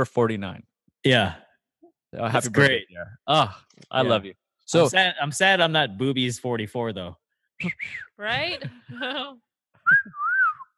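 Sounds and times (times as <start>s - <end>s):
speech: 0.0s - 1.4s, 2.1s - 10.2s
person whistling a short wavering tune: 7.6s - 8.2s, 9.8s - 10.7s.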